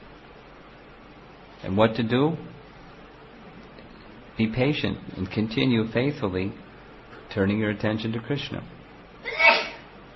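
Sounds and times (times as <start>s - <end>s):
speech: 1.6s - 2.6s, 4.4s - 6.6s, 7.3s - 9.5s
person sneezing: 9.2s - 9.9s.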